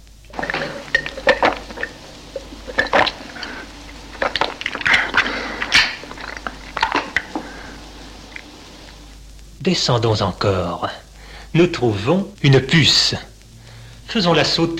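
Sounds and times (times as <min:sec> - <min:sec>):
person gulping and swallowing a glass of water: 0:00.3 - 0:09.1
speech: 0:09.6 - 0:13.3, 0:14.1 - 0:14.7.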